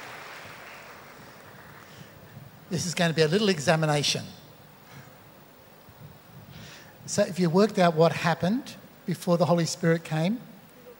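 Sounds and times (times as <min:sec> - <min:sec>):
crowd clapping: 0:00.0 - 0:02.2
speech: 0:02.7 - 0:04.4, 0:07.1 - 0:10.5.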